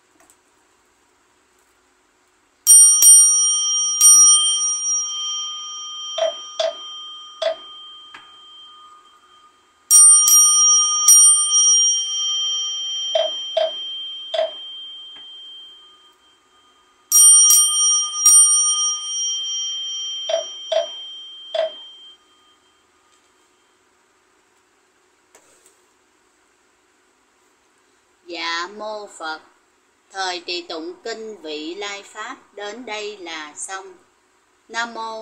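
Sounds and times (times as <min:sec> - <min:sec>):
bells ringing in a Buddhist chanting setting: 0:02.7 - 0:23.7
speech: 0:28.7 - 0:29.5, 0:30.2 - 0:34.0, 0:34.7 - 0:35.2.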